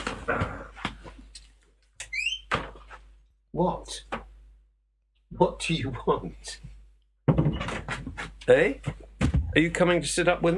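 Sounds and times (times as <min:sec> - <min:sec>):
speech: 0:03.6 - 0:04.1, 0:05.4 - 0:06.7, 0:08.5 - 0:10.5
door thumping and rattling as a dog tries to get into a studio: 0:07.3 - 0:09.6
dull knocks: 0:07.3 - 0:09.6.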